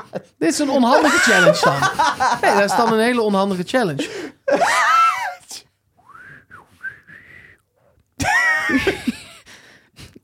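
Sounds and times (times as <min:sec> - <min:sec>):
laughter: 0:00.0 - 0:03.3, 0:04.0 - 0:05.1, 0:08.2 - 0:09.5
speech: 0:00.1 - 0:05.0
person whistling soft sliding notes: 0:06.0 - 0:07.6.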